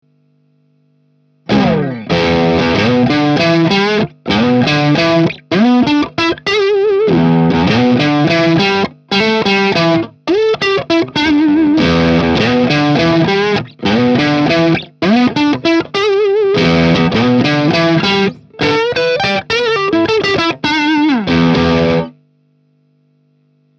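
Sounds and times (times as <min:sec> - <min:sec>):
tube overdrive tone: 0:00.0 - 0:23.7.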